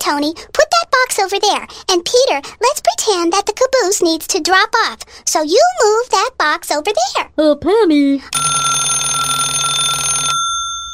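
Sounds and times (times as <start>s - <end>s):
speech: 0.1s - 8.8s
telephone ringing with a warbling electronic trill: 8.3s - 10.9s.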